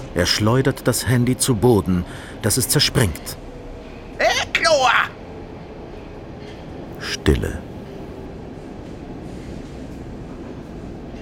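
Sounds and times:
underground metro train running: 0.0s - 11.2s
speech: 0.2s - 3.4s, 7.3s - 7.7s.

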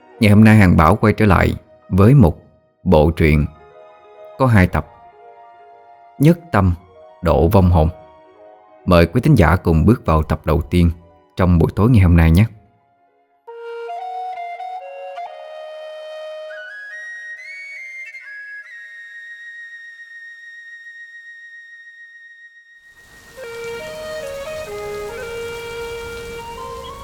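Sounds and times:
speech: 0.2s - 3.6s, 4.4s - 4.9s, 6.2s - 8.0s, 8.8s - 12.6s
heavy rain on a July night in a poor southern countryside village: 23.0s - 27.0s.

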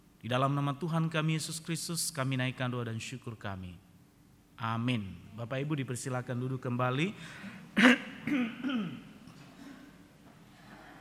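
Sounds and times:
speech: 0.2s - 3.9s, 4.6s - 9.1s
church congregation clearing their throats: 7.8s - 10.1s
church congregation coughing: 7.8s - 11.0s.

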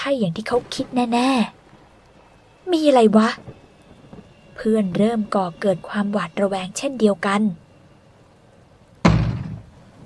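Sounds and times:
speech: 0.0s - 1.6s, 2.7s - 3.6s, 4.6s - 7.6s
door of a lodging house kicked from outside, heavy thud: 9.0s - 9.7s.

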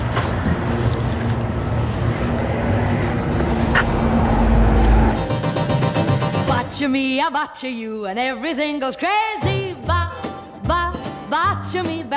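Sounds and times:
car engine rumbling as it passes: 1.1s - 6.6s
speech: 6.8s - 10.0s, 10.7s - 12.1s.

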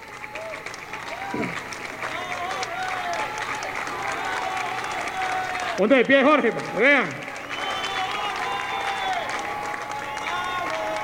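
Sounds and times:
audience applause at a gathering of grassroots communicators: 0.0s - 11.0s
speech: 5.8s - 7.2s.

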